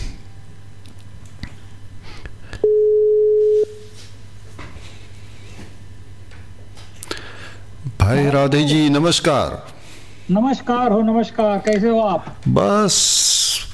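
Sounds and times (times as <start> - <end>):
low hum: 0.0 - 13.7
electronic telephone line tone while dialing a call: 2.6 - 3.9
speech: 8.1 - 13.7.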